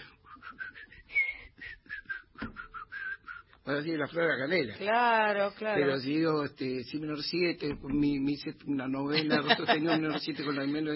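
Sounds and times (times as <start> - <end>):
person whistling a lively tune: 0.2 - 3.6
speech: 3.7 - 10.9
laughter: 9.1 - 10.9.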